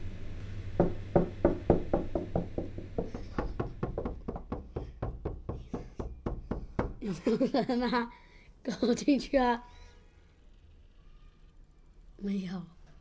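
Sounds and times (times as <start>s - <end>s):
rapid steady knocking on a door: 0.8s - 7.0s
speech: 7.1s - 9.7s, 12.2s - 12.8s.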